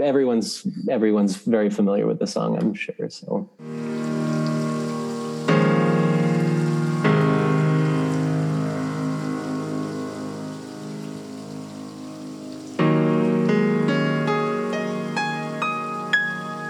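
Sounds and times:
speech: 0.0s - 4.1s
slow sustained piano chords: 3.6s - 16.6s
steady rain: 3.6s - 16.6s.

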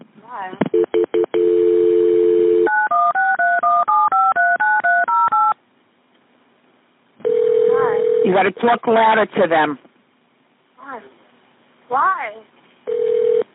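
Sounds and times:
speech: 0.3s - 0.6s, 8.3s - 9.8s
steady telephone dial tone: 0.8s - 5.5s, 7.2s - 8.3s, 12.9s - 13.5s
telephone touch-tone keypad beeps while connecting a call to the state police: 2.7s - 5.6s.

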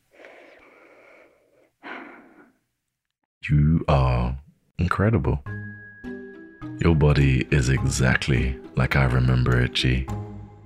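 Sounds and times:
deep breath: 0.0s - 2.6s
speech: 3.5s - 5.6s, 6.8s - 10.3s.

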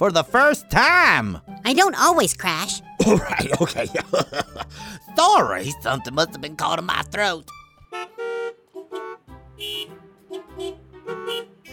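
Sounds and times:
speech: 0.0s - 8.0s
laughter: 3.0s - 4.8s
car horns honking in a traffic jam: 7.8s - 11.7s.

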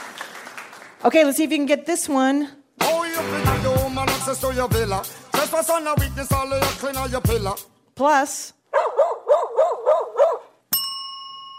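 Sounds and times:
speech: 1.0s - 2.6s, 3.2s - 8.6s
dog barking: 8.7s - 10.6s
single bright ring of a bell: 10.7s - 11.5s.

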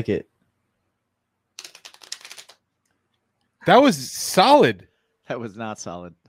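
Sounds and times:
speech: 0.0s - 0.3s, 3.6s - 6.2s
riffle of a deck of playing cards being shuffled: 1.6s - 2.6s.

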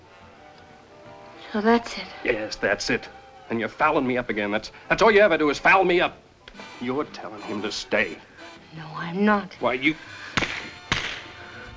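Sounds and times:
steady hissing background: 0.0s - 11.7s
speech: 1.5s - 6.2s, 6.8s - 10.2s
slap across the face: 10.4s - 11.4s.

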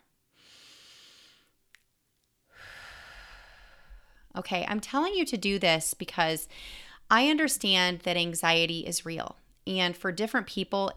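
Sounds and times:
single slow deep breath drawn in and let out: 0.4s - 1.6s, 2.5s - 4.4s, 6.5s - 7.1s
speech: 4.4s - 10.9s.

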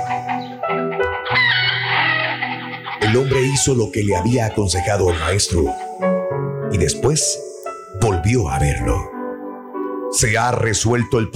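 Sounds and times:
flock of chickens clucking and squawking: 0.0s - 3.7s
speech: 3.1s - 9.1s, 10.1s - 11.3s.

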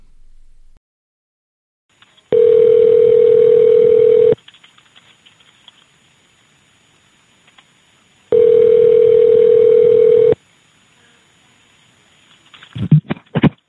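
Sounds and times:
police dispatcher's outgoing telephone call ring tones: 2.3s - 4.4s, 8.3s - 10.4s.

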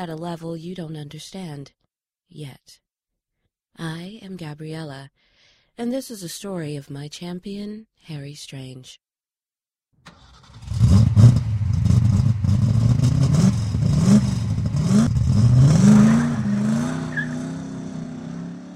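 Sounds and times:
speech: 0.0s - 2.8s, 3.8s - 9.0s, 10.0s - 10.3s
old F-Coupe car engine revving while speeding over dirt and gravel: 10.1s - 18.7s.

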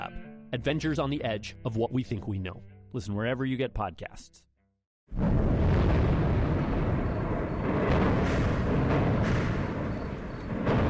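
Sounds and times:
speech: 0.5s - 4.5s, 5.1s - 5.6s
explosions from NATO airstrikes over Tripoli, Libya: 5.1s - 10.8s
heavier booms from airstrikes: 5.1s - 10.8s.

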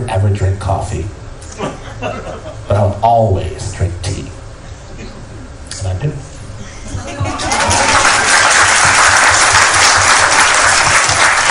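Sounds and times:
speech: 0.1s - 3.9s
laughter: 1.5s - 2.8s, 6.6s - 8.5s
audience applause: 7.3s - 11.4s.

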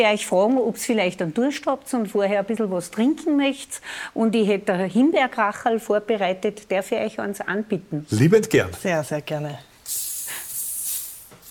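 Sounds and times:
speech: 0.0s - 10.0s
bottle of homemade raspberry soda fizzing and hissing when opened: 9.8s - 11.5s.

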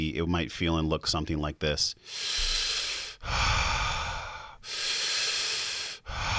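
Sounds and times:
speech: 0.0s - 3.5s
conscious connected circular breathing: 2.0s - 6.3s.

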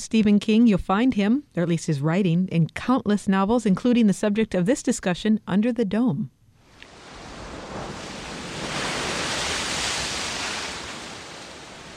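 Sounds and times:
speech: 0.0s - 6.4s
Pacific Ocean waves rolling onto beach: 6.6s - 11.9s.

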